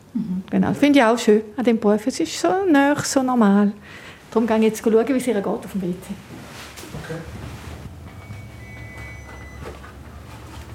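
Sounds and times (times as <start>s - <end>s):
low rumble of room noise: 0.0s - 10.7s
speech: 0.1s - 6.4s, 7.1s - 7.4s
hospital patient call bell electronic tone: 8.0s - 10.7s.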